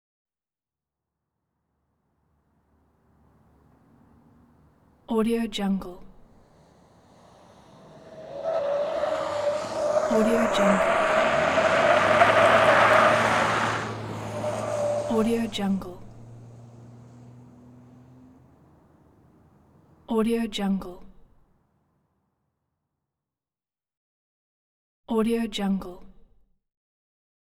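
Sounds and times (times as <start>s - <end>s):
truck SUV accelerating: 1.7s - 22.2s
tyres squealing in tight corners: 6.4s - 20.1s.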